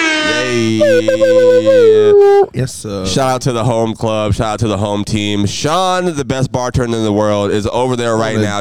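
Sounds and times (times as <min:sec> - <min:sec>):
loud brassy air horn blaring: 0:00.0 - 0:02.5
speech: 0:00.6 - 0:08.5.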